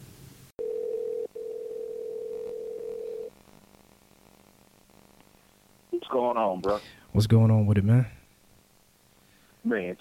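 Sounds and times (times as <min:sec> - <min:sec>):
telephone dial tone as a call is placed: 0:00.6 - 0:03.3
speech: 0:06.0 - 0:08.2, 0:09.7 - 0:09.9.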